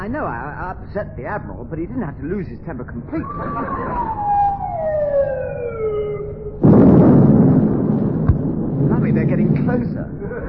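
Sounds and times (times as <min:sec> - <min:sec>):
speech: 0:00.0 - 0:05.4, 0:09.1 - 0:10.4
laughter: 0:03.1 - 0:04.4, 0:10.2 - 0:10.4
shell explosion from naval fleet gunfire: 0:06.6 - 0:09.7.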